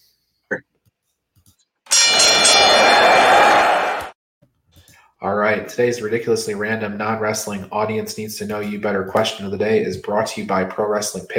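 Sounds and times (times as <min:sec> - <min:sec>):
loud bell ringing with a harsh metallic clatter: 0:01.9 - 0:04.0
speech: 0:05.2 - 0:11.3.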